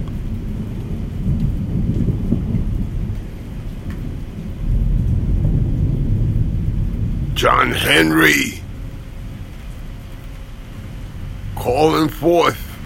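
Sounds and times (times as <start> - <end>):
deep thunder rumbling: 0.0 - 12.8
steady falling rain: 0.0 - 12.8
speech: 7.4 - 8.6, 11.8 - 12.6.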